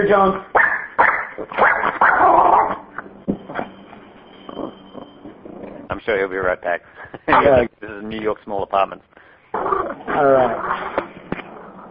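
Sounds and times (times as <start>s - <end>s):
speech: 0.0s - 0.6s, 6.0s - 10.9s
dog barking and yelping: 0.5s - 3.0s.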